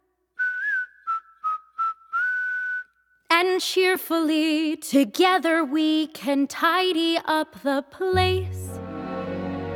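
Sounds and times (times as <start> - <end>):
person whistling a short lilting tune: 0.4 - 3.2
speech: 3.6 - 8.7.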